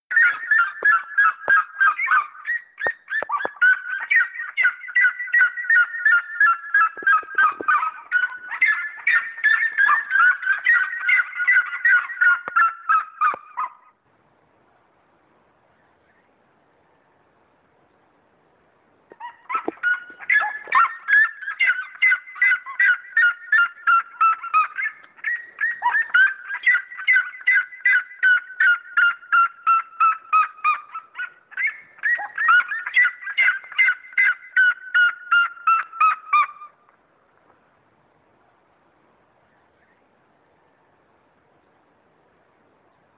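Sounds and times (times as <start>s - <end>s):
seriema calling: 0.1s - 14.0s, 19.1s - 36.9s.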